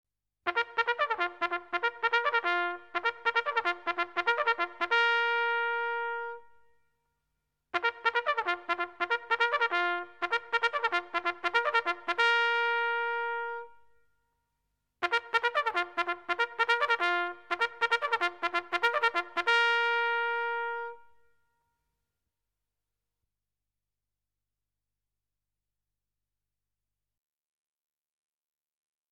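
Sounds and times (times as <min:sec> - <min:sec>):
military trumpet: 0:00.5 - 0:06.8, 0:07.7 - 0:14.0, 0:15.0 - 0:21.5.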